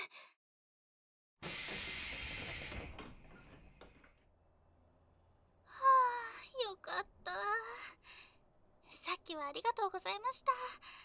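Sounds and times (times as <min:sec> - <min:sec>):
pneumatic hiss of a train door closing: 0:01.4 - 0:04.3
faint clunks: 0:01.4 - 0:05.4
low rumbling background: 0:02.6 - 0:11.0
speech: 0:09.5 - 0:10.9.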